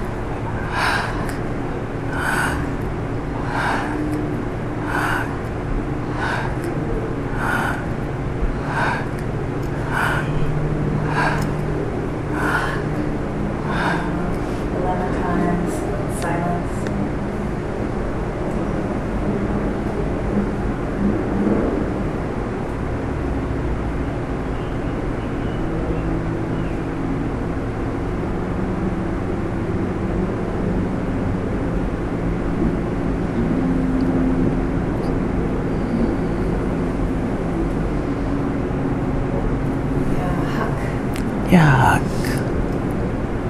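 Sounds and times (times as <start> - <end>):
soft breathing: 0.0 - 15.9
sharp breathy whispered syllables chanted on the breath: 0.0 - 16.8, 40.0 - 42.6
low continuous rumble: 0.0 - 43.4.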